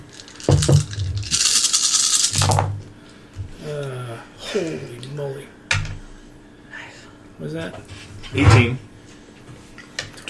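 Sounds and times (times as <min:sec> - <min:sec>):
large handful of dice rattling across a surface in a tabletop role-playing game: 0:00.0 - 0:02.7
speech: 0:04.6 - 0:05.5, 0:07.5 - 0:08.9.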